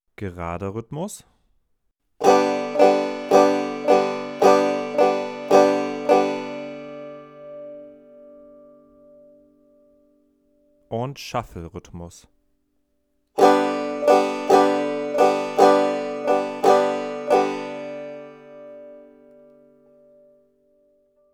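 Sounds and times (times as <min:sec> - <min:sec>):
shuffle rhythm: 0:02.2 - 0:07.0, 0:13.4 - 0:18.3.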